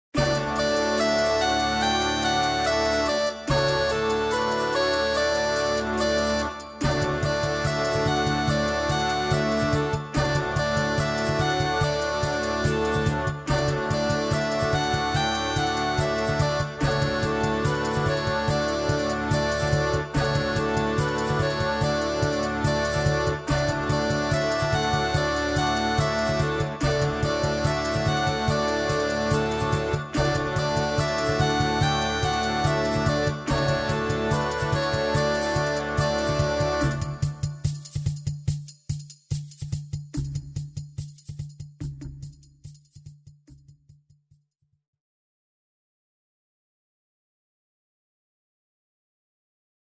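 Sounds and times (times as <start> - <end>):
flute playing: 0.2 - 37.8
drummer accompaniment: 6.8 - 43.2.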